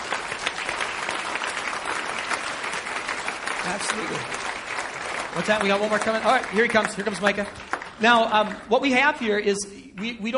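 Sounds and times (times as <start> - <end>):
audience applauding: 0.0 - 9.4
speech: 3.7 - 4.5, 5.3 - 10.3.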